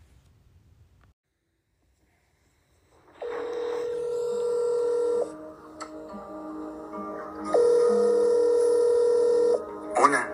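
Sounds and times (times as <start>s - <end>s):
electronic telephone ringback tones: 3.0s - 5.4s, 7.5s - 10.2s.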